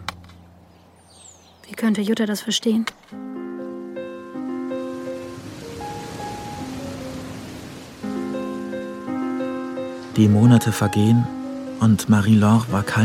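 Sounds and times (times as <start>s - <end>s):
speech: 1.7s - 3.3s, 10.2s - 13.0s
soft sustained musical tones: 3.2s - 13.0s
steady rainfall hiss: 4.8s - 13.0s.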